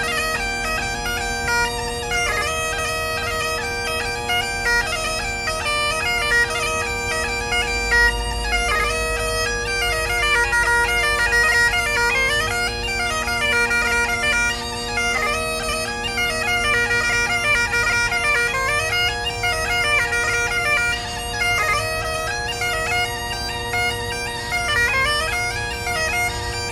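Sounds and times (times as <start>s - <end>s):
bagpipe drones held by a player rehearsing on the Seine quays at Bercy: 0.0s - 26.7s.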